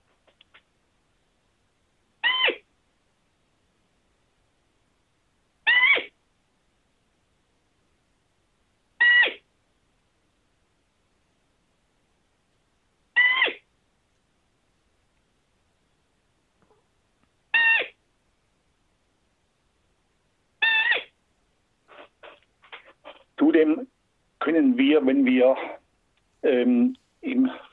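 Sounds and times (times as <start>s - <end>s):
roe deer doe contact calls: 2.2s - 2.7s, 5.7s - 6.1s, 9.0s - 9.4s, 13.2s - 13.6s, 17.5s - 18.0s, 20.6s - 21.2s, 21.9s - 23.3s
speech: 23.4s - 25.8s, 26.4s - 27.7s.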